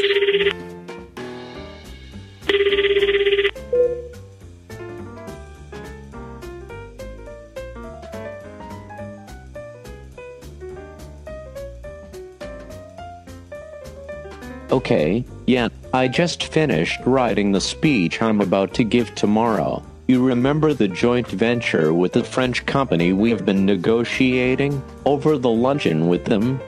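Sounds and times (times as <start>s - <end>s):
telephone ringing with a warbling electronic tone: 0.0s - 0.8s, 2.4s - 4.2s
light music: 0.0s - 26.6s
speech: 14.8s - 26.6s.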